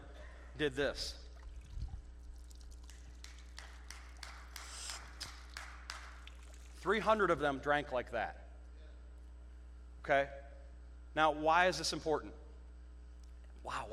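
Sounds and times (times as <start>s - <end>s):
speech: 0.6s - 1.2s, 6.8s - 8.4s, 10.1s - 10.4s, 11.2s - 12.4s, 13.6s - 13.9s
person lapping up water: 1.2s - 3.6s, 4.5s - 5.6s, 6.2s - 6.8s
water splashing: 1.2s - 3.7s, 4.8s - 7.0s.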